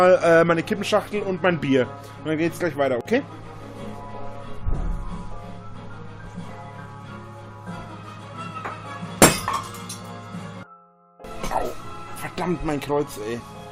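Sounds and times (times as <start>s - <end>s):
speech: 0.0s - 3.5s, 12.4s - 13.6s
bright tinkle of drinking glass shards: 9.2s - 10.2s
drinking glass smashing on the floor: 9.2s - 10.2s.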